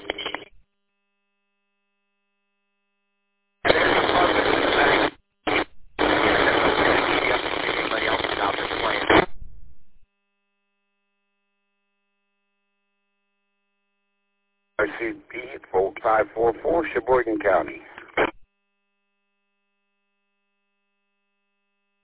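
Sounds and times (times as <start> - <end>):
shortwave radio static and carrier hiss: 0.0 - 0.5, 3.6 - 9.4, 14.8 - 18.4
speech: 16.9 - 18.0.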